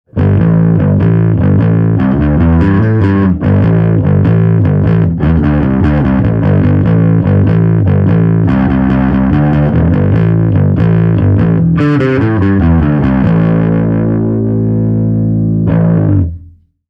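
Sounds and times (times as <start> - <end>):
overdriven distorted bass: 0.1 - 16.8.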